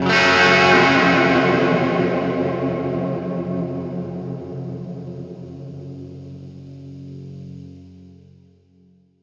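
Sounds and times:
western guitar stab: 0.0 - 6.7.

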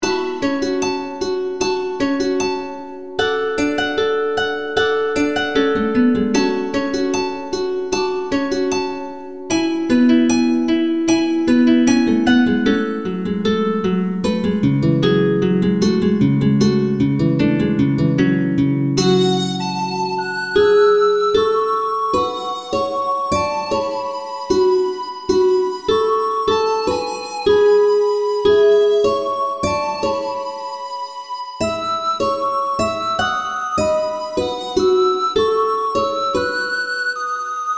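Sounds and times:
acoustic music loop: 0.0 - 37.7.

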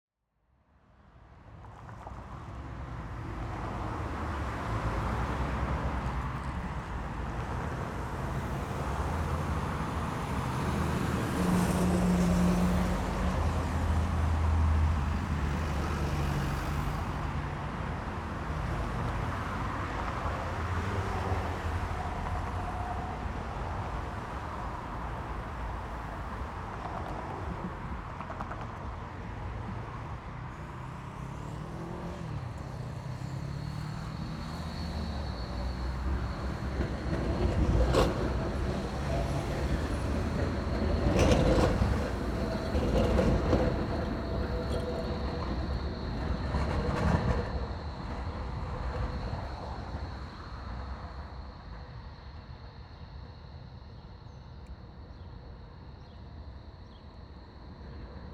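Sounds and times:
city street traffic with cars: 0.9 - 58.3
city tram: 1.0 - 58.3.

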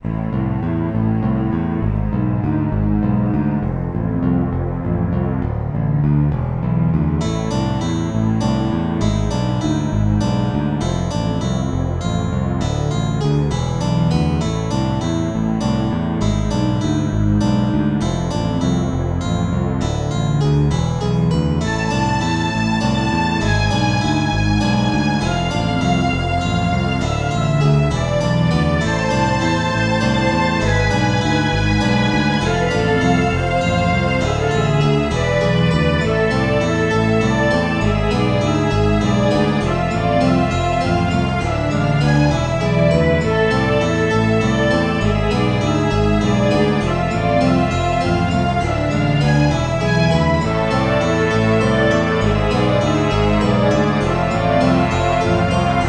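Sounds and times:
death waltz music: 0.0 - 55.8.

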